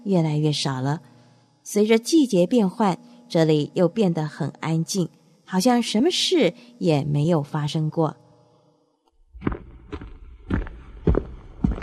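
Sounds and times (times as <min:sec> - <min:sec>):
speech: 0:00.0 - 0:01.1, 0:01.7 - 0:08.2
footsteps of a man walking at a subway station: 0:09.4 - 0:11.8.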